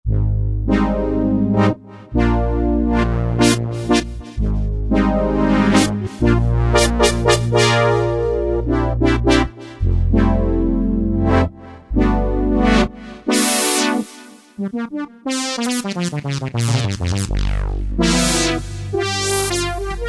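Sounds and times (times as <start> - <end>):
Roland JD-990 analog brass synthesizer factory patch: 0.1 - 20.0.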